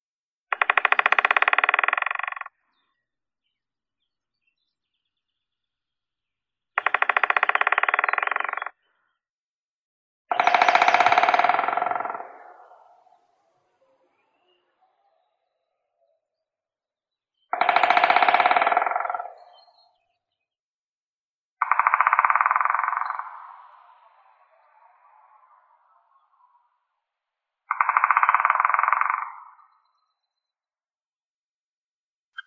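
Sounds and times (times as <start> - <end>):
white-backed woodpecker Dendrocopos leucotos: 0.5 - 2.8, 6.8 - 8.7, 10.3 - 13.2, 17.5 - 20.1, 21.6 - 23.5, 27.7 - 30.1.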